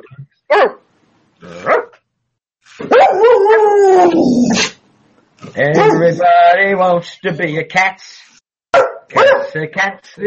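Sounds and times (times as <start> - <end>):
dog barking and howling: 0.5 - 0.8, 1.6 - 2.0, 2.8 - 4.8, 5.6 - 6.2, 8.8 - 9.6
speech: 0.5 - 0.8, 5.6 - 8.2, 9.1 - 10.2.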